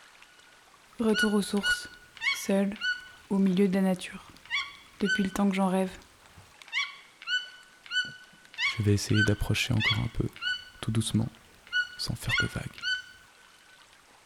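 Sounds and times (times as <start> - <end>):
toucans singing in flooded Amazon rainforest: 1.0 - 3.6, 4.3 - 13.2
speech: 1.0 - 4.3, 5.0 - 6.0, 8.8 - 11.4, 12.0 - 12.7.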